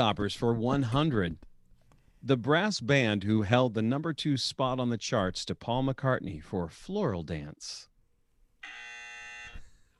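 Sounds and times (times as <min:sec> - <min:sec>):
speech: 0:00.0 - 0:01.5, 0:02.2 - 0:07.9
game show buzzer: 0:08.6 - 0:09.6.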